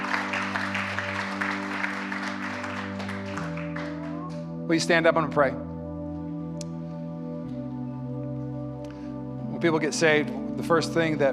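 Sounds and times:
church audience applauding: 0.0 - 4.5
sustained organ or keyboard chord: 0.0 - 11.3
speech: 4.7 - 5.7, 9.6 - 11.3.

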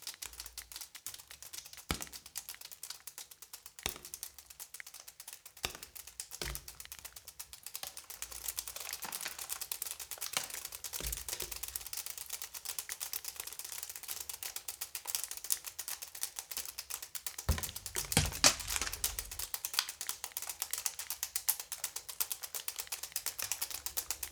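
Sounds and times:
water dripping: 0.0 - 24.3
water splashing: 17.5 - 19.5.

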